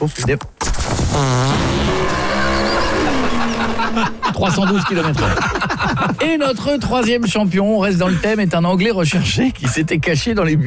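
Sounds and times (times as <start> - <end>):
speech: 0.0 - 1.7, 3.9 - 10.6
dragster racing car engine roaring as it speeds away: 1.2 - 4.6
laughter: 2.9 - 10.2.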